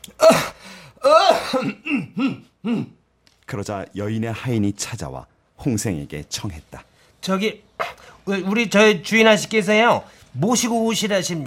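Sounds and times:
speech: 0.2s - 0.5s, 3.5s - 11.4s
man clearing his throat with dry fake coughs: 0.2s - 3.0s.

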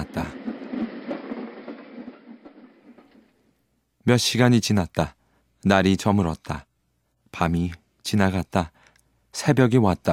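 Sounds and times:
steam train pulling away in a snowstorm: 0.0s - 3.3s
steam train wheels clattering over rails: 0.0s - 3.4s
speech: 4.1s - 6.7s, 7.3s - 10.1s.

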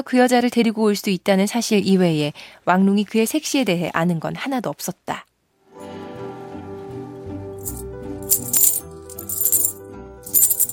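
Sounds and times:
speech: 0.0s - 5.3s
silver and copper coins clinking and jingling: 7.6s - 10.7s.

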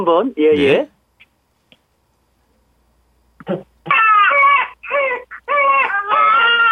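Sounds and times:
speech: 0.0s - 0.9s, 3.4s - 4.0s
infant wailing: 3.8s - 6.7s.

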